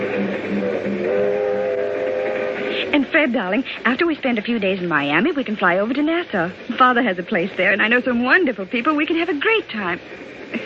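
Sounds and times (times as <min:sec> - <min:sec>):
passenger train travelling on rails to Miami: 0:00.0 - 0:07.9
speech: 0:02.9 - 0:10.6.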